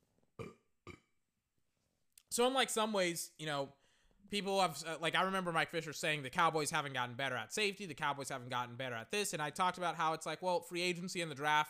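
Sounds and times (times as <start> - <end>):
short loud burps: 0.4 - 1.2
speech: 2.4 - 11.6.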